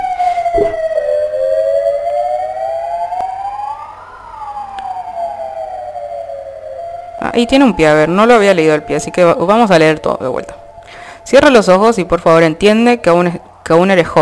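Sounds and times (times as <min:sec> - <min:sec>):
ambulance siren wailing: 0:00.0 - 0:14.1
speech: 0:07.4 - 0:10.6, 0:11.2 - 0:14.1.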